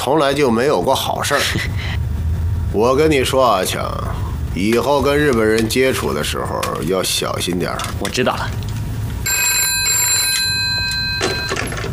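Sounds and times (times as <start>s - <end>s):
speech: 0.0s - 1.9s, 2.7s - 8.7s
telephone ringing with a bright electronic tone: 9.2s - 11.9s.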